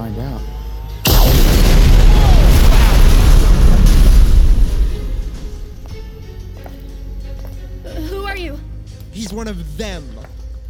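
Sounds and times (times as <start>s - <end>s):
powerful blast breaking through a steel barrier: 1.1s - 6.2s
dense roaring rumble: 1.1s - 6.3s
speech: 9.4s - 10.2s.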